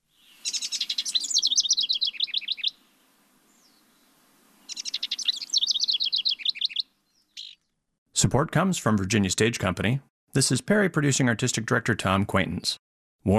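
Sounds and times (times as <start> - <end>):
rapid high-pitched bird song from a Bird of the Year species: 0.1 - 2.8, 3.5 - 7.8
speech: 8.2 - 13.3.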